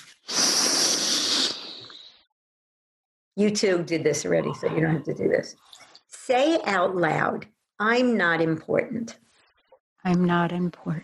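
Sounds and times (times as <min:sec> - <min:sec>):
long deep hissing inhale: 0:00.0 - 0:02.2
speech: 0:03.4 - 0:09.2, 0:10.0 - 0:11.0.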